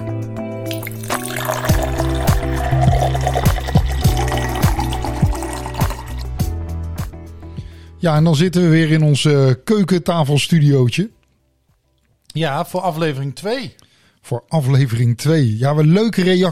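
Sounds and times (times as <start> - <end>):
whisky pouring into a glass: 0.7 - 6.4
speech: 8.0 - 11.2, 12.4 - 16.4.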